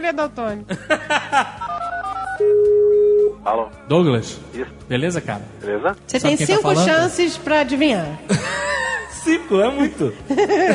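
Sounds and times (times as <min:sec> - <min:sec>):
speech: 0:00.0 - 0:01.6, 0:02.4 - 0:02.7, 0:03.4 - 0:10.7
laughter: 0:00.7 - 0:01.8, 0:08.3 - 0:09.2, 0:10.3 - 0:10.7
loud steady unbroken telephone tone: 0:01.7 - 0:03.4.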